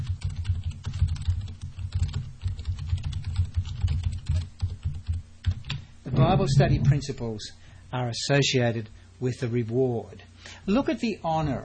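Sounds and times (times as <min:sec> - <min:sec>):
rapid typing on a computer keyboard: 0:00.0 - 0:05.8
speech: 0:06.2 - 0:11.6.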